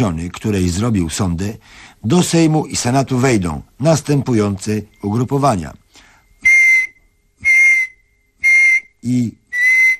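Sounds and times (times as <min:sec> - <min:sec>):
speech: 0:00.0 - 0:05.8, 0:09.0 - 0:09.4
high-pitched whistle blasts: 0:06.2 - 0:09.9.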